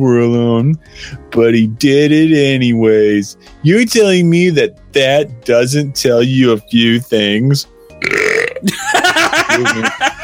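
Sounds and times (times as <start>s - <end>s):
speech: 0.0s - 10.2s
loud drawn-out croaky gurgling burp: 8.0s - 8.7s
laughter: 8.6s - 10.2s.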